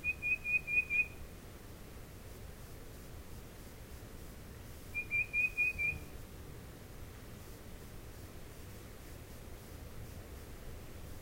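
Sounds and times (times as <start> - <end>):
tufted titmouse whistling clear notes: 0.0 - 1.2, 5.0 - 6.0.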